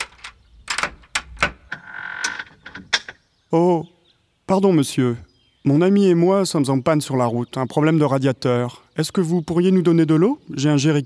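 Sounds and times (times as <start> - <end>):
door latch and handle knocking and clicking: 0.0 - 3.2
speech: 3.5 - 11.0.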